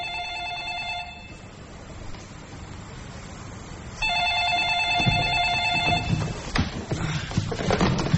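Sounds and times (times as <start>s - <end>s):
telephone bell ringing at a command headquarters aboard a ship: 0.0s - 1.5s, 4.0s - 6.5s
clattering and knocking at a command headquarters aboard a ship: 4.9s - 8.1s.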